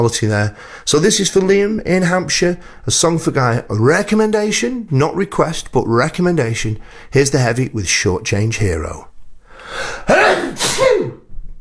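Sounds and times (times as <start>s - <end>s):
speech: 0.0s - 9.1s, 9.7s - 11.2s
loud forceful human sneeze: 9.7s - 11.3s.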